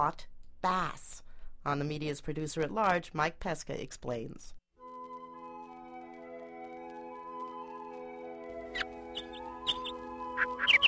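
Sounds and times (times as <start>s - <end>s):
speech: 0.0s - 4.6s
birds chirping morning songs by a shore: 8.6s - 10.8s.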